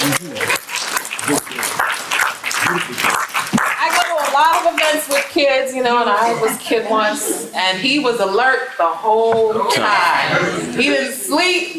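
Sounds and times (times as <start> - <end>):
audience clapping: 0.0 - 5.4
speech: 5.6 - 11.7.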